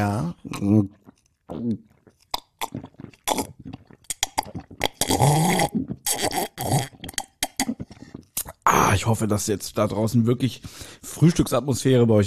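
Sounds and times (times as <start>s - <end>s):
speech: 0.0s - 1.0s, 9.1s - 12.2s
throaty gurgling swallowing noises: 0.0s - 9.0s
person slurping cocoa made from instant powder: 0.0s - 9.1s.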